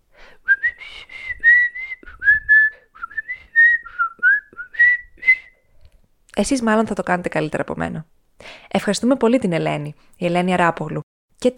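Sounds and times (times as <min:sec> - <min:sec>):
person whistling a melodic song tune: 0:00.5 - 0:05.7
speech: 0:06.4 - 0:08.2, 0:08.8 - 0:11.5.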